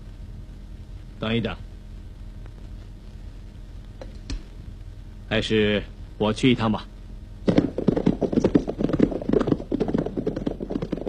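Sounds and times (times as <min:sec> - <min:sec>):
speech: 0:01.2 - 0:01.7, 0:05.3 - 0:06.9
horses' hooves clip-clopping as military officers and guards gallop on horseback: 0:07.5 - 0:11.0.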